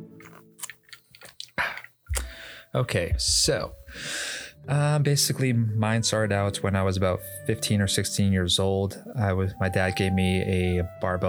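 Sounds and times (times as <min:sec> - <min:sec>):
person sipping whiskey: 0:00.0 - 0:02.7, 0:03.7 - 0:04.6
soft slurps and wet mouth clicks: 0:00.1 - 0:02.6
gulp while drinking whiskey: 0:00.2 - 0:02.7
speech: 0:02.7 - 0:11.2.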